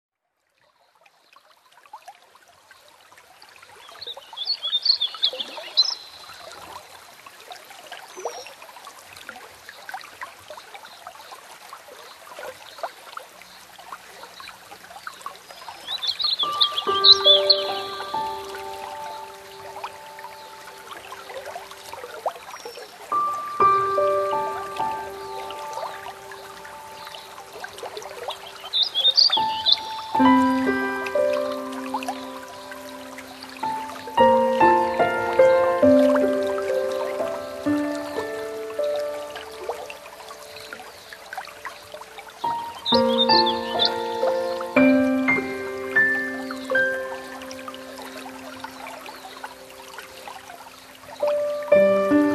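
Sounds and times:
Warbling Vireo singing: 3.9 - 6.5, 15.5 - 50.5
piano: 16.0 - 52.3.

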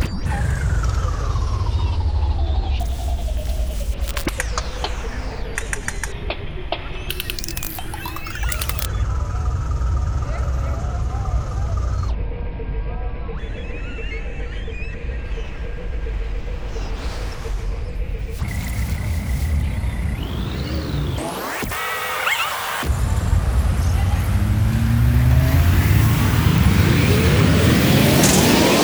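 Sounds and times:
strange drone: 0.1 - 28.8.

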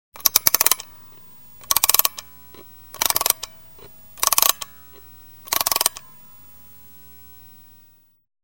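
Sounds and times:
clock being wound: 0.2 - 0.9, 1.6 - 2.3, 2.9 - 3.5, 4.2 - 4.7, 5.5 - 6.0.

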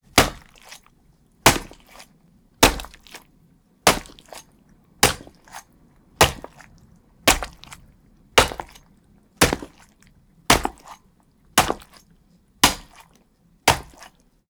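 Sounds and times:
axe chopping turkey meat: 0.1 - 0.8, 1.5 - 2.0, 2.6 - 3.2, 3.9 - 4.4, 5.0 - 5.6, 6.2 - 6.6, 7.3 - 7.8, 8.4 - 8.8, 9.4 - 9.8, 10.5 - 11.0, 11.6 - 12.0, 12.6 - 13.0, 13.7 - 14.1.

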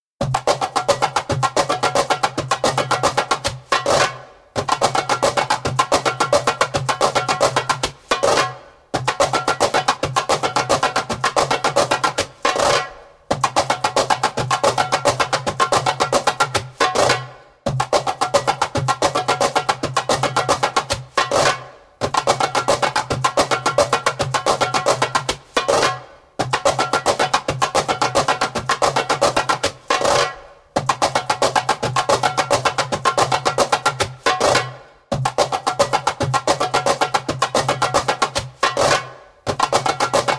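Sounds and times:
fast djembe transitions: 0.2 - 40.3.

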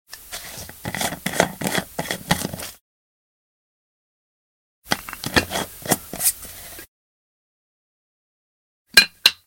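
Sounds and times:
coffee pot top unscrewing: 0.4 - 2.7, 4.9 - 6.4.

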